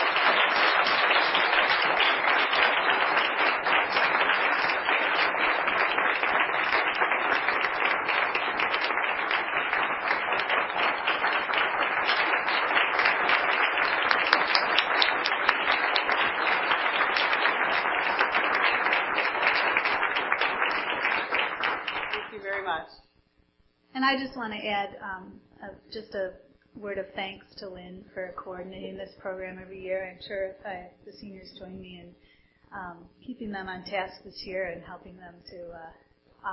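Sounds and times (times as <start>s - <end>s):
crowd applauding: 0.0s - 22.8s
speech: 24.1s - 36.5s.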